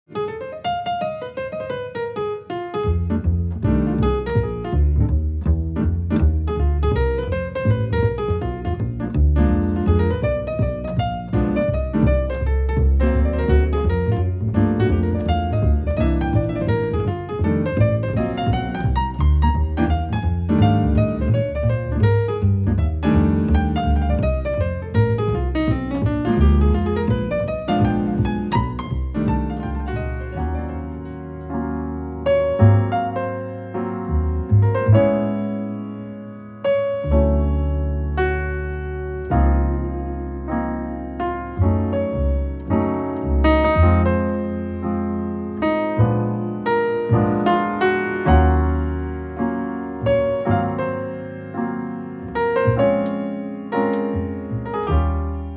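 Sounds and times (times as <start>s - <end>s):
piano duo: 0.0s - 55.5s.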